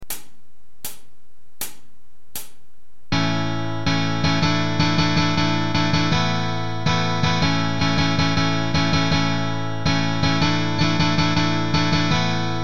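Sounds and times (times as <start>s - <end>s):
guitar playing suspended chords exercise: 3.1s - 12.6s.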